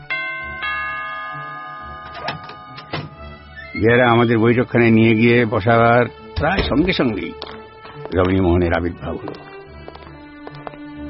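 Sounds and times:
two-tone doorbell chime at a house's front door: 0:00.0 - 0:04.2
speech: 0:03.8 - 0:07.4, 0:08.1 - 0:09.4.

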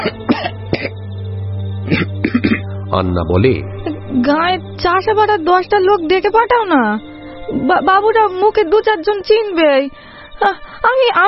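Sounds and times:
speech: 0:00.0 - 0:00.6, 0:01.9 - 0:11.2
seventeen-year-old boy coughing after choking mid-laugh: 0:00.0 - 0:01.0, 0:01.9 - 0:02.6.

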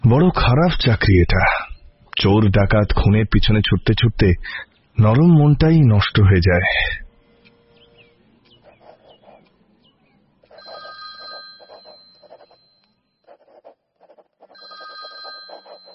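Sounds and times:
speech: 0:00.1 - 0:01.6, 0:02.2 - 0:07.0
softer, higher chirping sounds: 0:07.4 - 0:15.9
telephone ringing in electronic bursts: 0:10.5 - 0:15.9.

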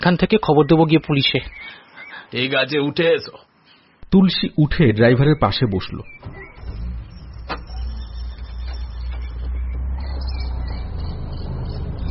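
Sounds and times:
speech: 0:00.0 - 0:03.5, 0:04.1 - 0:06.4
lorry driving at speed on the road: 0:06.2 - 0:12.0.

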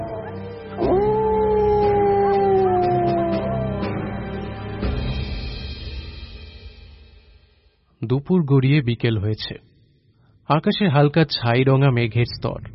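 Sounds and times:
single dog howling: 0:00.0 - 0:04.3
speech: 0:08.1 - 0:09.7, 0:10.5 - 0:12.7.

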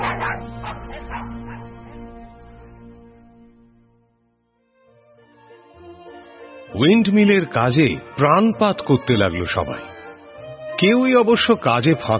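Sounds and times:
dogs barking: 0:00.0 - 0:02.1
speech: 0:06.7 - 0:09.9, 0:10.8 - 0:12.1.

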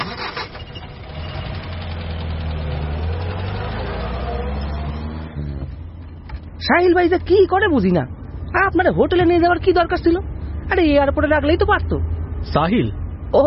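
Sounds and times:
car engine starting: 0:00.0 - 0:07.4
speech: 0:06.7 - 0:13.4.

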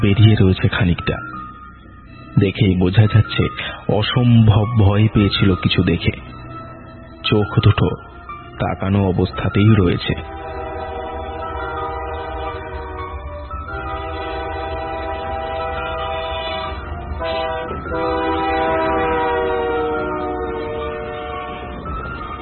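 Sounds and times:
speech: 0:00.0 - 0:01.4, 0:02.4 - 0:06.4, 0:07.3 - 0:10.4
through train passing with a loud roar: 0:00.0 - 0:22.4
sustained horn-like tones: 0:10.1 - 0:22.0.

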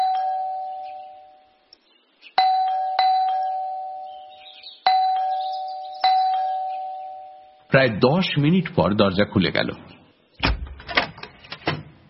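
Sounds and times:
doorbell mounted beside a door ringing: 0:00.0 - 0:01.3, 0:02.4 - 0:04.2, 0:04.9 - 0:07.6
speech: 0:07.8 - 0:10.0.

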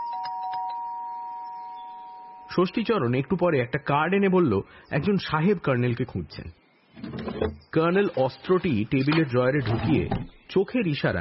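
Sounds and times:
electronic doorbell ringing: 0:00.0 - 0:02.5
speech: 0:02.6 - 0:06.6, 0:07.4 - 0:11.1.

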